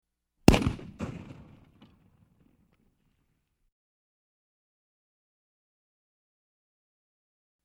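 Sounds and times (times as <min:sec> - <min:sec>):
cannon blast: 0:00.5 - 0:01.9.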